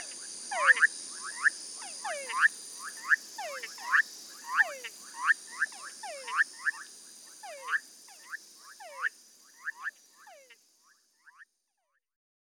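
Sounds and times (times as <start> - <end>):
high-pitched background hiss: 0.0 - 11.7
tree frogs calling in a chorus: 0.5 - 10.6.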